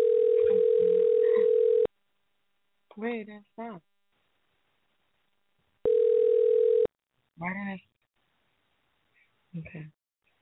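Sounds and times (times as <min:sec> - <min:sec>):
telephone dial tone while calling a number: 0:00.0 - 0:01.9, 0:05.9 - 0:06.9
speech: 0:03.0 - 0:03.9, 0:07.4 - 0:07.9, 0:09.5 - 0:10.0.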